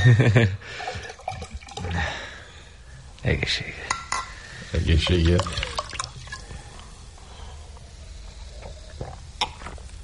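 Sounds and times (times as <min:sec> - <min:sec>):
speech: 0:00.0 - 0:01.0, 0:03.2 - 0:04.0, 0:04.7 - 0:05.7
new wine pouring into a glass: 0:00.8 - 0:02.1, 0:04.9 - 0:06.8.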